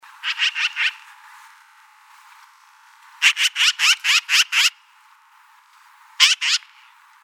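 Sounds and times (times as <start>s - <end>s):
black-billed magpie: 0.2s - 1.1s, 3.2s - 4.8s, 6.2s - 7.0s.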